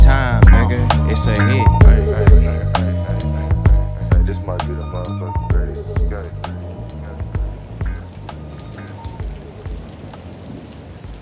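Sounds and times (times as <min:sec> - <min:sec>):
low droning bass tone: 0:00.0 - 0:10.3
summer rain pattering: 0:00.0 - 0:11.2.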